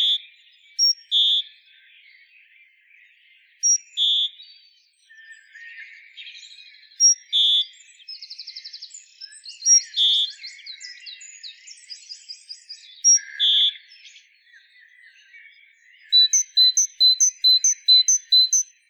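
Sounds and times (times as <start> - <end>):
great tit Parus major repeating a sharp high note and lower whistle: 0.0 - 1.7, 3.6 - 4.7, 6.6 - 14.4, 15.0 - 18.8.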